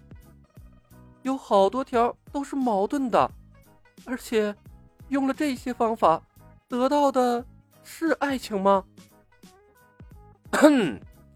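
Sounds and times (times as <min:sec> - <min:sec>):
speech: 0:01.2 - 0:03.4, 0:04.0 - 0:09.1, 0:10.6 - 0:11.1
man coughing: 0:10.5 - 0:11.0.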